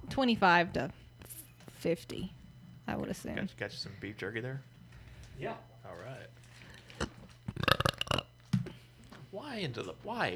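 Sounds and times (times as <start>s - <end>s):
speech: 0.2s - 1.0s, 1.8s - 4.7s, 5.4s - 6.4s, 9.4s - 10.3s
long loud burp: 7.0s - 8.3s.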